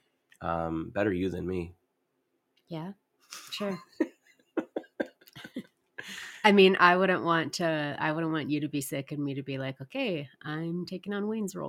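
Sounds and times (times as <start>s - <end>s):
speech: 0.4s - 1.8s, 2.7s - 4.0s, 6.4s - 11.6s
laughter: 3.6s - 6.4s
dry coughing: 4.6s - 6.4s.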